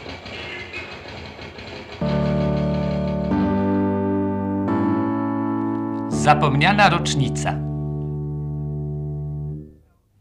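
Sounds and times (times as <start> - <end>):
radio interval signal of low zither chords: 2.0 - 9.9
speech: 6.3 - 7.7.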